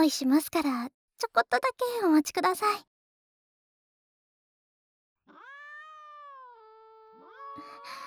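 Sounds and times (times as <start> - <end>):
speech: 0.0 - 2.9
cats meowing begging for treats: 5.3 - 7.8.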